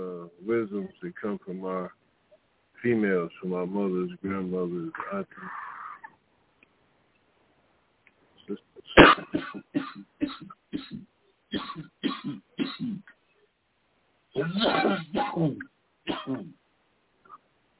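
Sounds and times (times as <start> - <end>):
speech: 0.5 - 2.0, 2.8 - 5.7, 8.5 - 9.8, 14.4 - 16.6
person coughing: 8.9 - 11.0, 11.6 - 13.0, 14.4 - 16.5.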